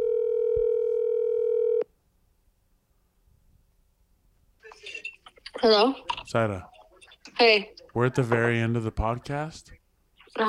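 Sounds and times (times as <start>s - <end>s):
steady electronic phone ringing tone: 0.0s - 1.9s
speech: 5.6s - 6.7s, 7.4s - 9.8s.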